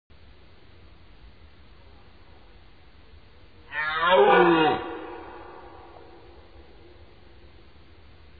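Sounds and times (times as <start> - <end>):
deer roaring: 3.7 - 6.8.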